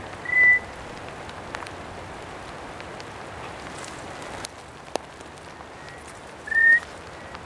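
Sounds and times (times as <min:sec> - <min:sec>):
Eleutherodactylus grandis calling: 0:00.2 - 0:00.7, 0:05.7 - 0:07.3.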